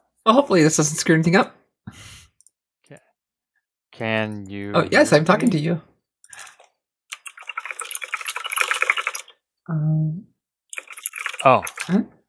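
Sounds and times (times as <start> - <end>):
speech: 0.2 - 2.1, 4.0 - 5.9, 9.7 - 10.3, 11.4 - 12.2
typing on a computer keyboard: 6.3 - 9.3, 10.7 - 12.0.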